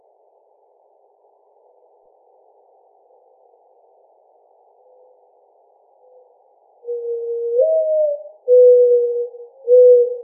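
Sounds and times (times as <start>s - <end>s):
mourning dove giving a mellow low coo: 6.8s - 10.2s.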